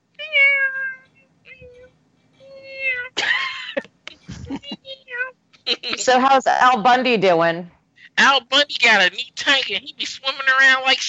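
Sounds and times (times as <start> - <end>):
female cat meowing: 0.2 - 1.9
laughter: 3.2 - 4.9, 5.6 - 6.2
speech: 6.0 - 11.0.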